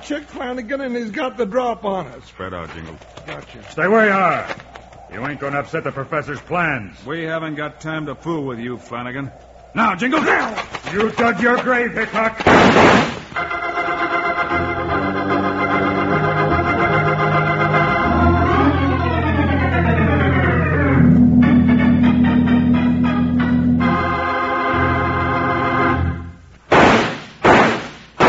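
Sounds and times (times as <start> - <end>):
speech: 0.1 - 13.1
loud sharp gunshots with tail: 10.2 - 13.5, 26.7 - 28.2
dramatic sustained music: 13.4 - 26.4.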